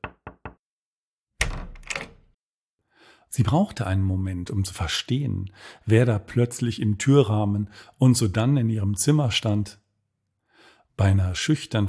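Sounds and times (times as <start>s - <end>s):
knocking on a door: 0.0s - 0.6s, 1.4s - 2.1s
speech: 3.3s - 9.8s, 11.0s - 11.8s.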